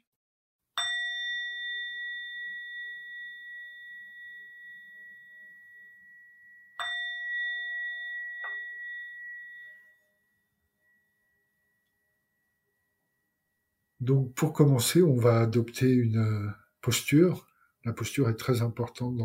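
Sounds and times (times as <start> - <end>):
small meditation bell ringing: 0.8 - 14.0
speech: 14.0 - 19.2.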